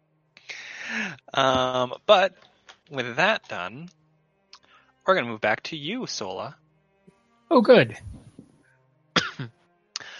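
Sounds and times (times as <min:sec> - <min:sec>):
speech: 0:01.0 - 0:04.0, 0:05.0 - 0:06.6, 0:07.5 - 0:08.2
throat clearing: 0:09.2 - 0:09.5.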